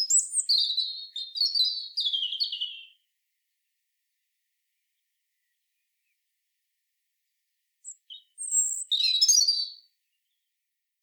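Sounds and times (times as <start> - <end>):
European robin Erithacus rubecula song: 0.0 - 3.0, 7.8 - 10.5.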